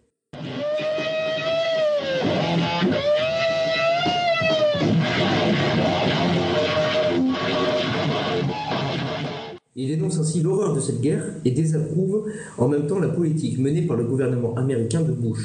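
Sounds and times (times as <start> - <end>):
heavily distorted electric guitar solo playing national anthem: 0.4 - 9.6
speech: 9.8 - 15.4.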